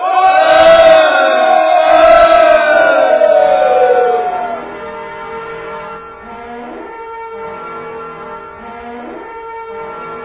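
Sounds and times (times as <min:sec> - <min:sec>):
large army crowd roaring a sustained battle cry: 0:00.0 - 0:04.6.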